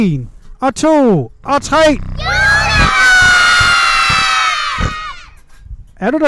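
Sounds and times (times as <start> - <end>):
speech: 0.0 - 2.4, 6.0 - 6.2
large group of children shouting in unison: 2.2 - 5.4.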